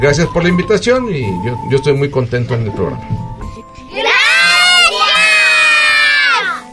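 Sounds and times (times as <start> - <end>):
speech: 0.0 - 3.3
large group of children shouting thanks in unison: 4.0 - 6.7.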